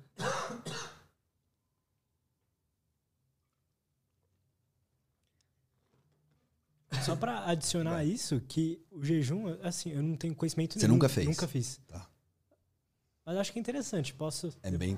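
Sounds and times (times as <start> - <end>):
cough and throat clearing: 0.0 - 1.2, 6.9 - 7.3
speech: 7.1 - 12.1, 13.3 - 14.9.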